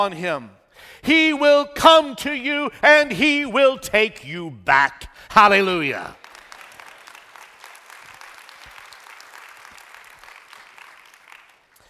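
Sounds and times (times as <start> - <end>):
speech: 0.0 - 6.2
crowd applauding: 6.1 - 11.8.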